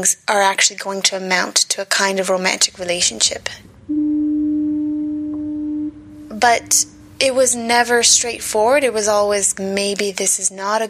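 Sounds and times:
speech: 0.0s - 3.7s, 6.3s - 10.8s
loud steady low-pitched foghorn blast: 3.8s - 7.2s.

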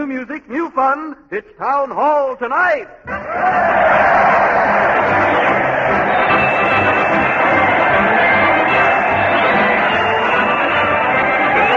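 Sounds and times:
speech: 0.0s - 6.5s
crowd cheering wildly: 3.1s - 11.7s.

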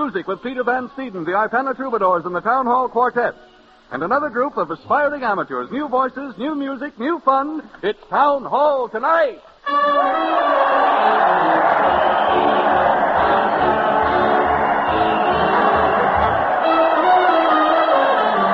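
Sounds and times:
speech: 0.0s - 11.6s
large crowd cheering and shouting at parade: 9.7s - 18.5s.

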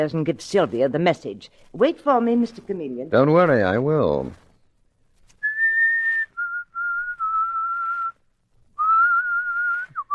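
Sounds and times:
speech: 0.0s - 4.4s
person whistling a simple tune: 5.4s - 8.2s, 8.8s - 10.1s.

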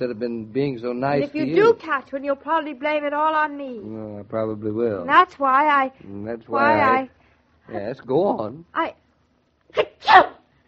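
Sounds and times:
speech: 0.0s - 9.0s, 9.7s - 10.4s
sneeze: 9.7s - 10.5s.

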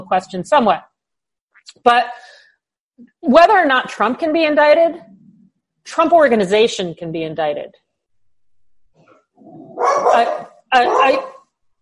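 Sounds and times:
speech: 0.1s - 0.9s, 1.6s - 2.3s, 3.0s - 5.2s, 5.8s - 7.8s, 10.2s - 11.3s
low rumble of a female pit bull mix dog: 9.0s - 11.2s
female pit bull mix dog barking: 9.4s - 11.5s.

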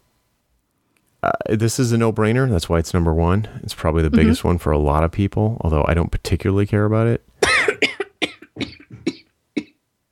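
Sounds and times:
speech: 1.5s - 7.3s
harsh coughing: 7.4s - 9.8s.

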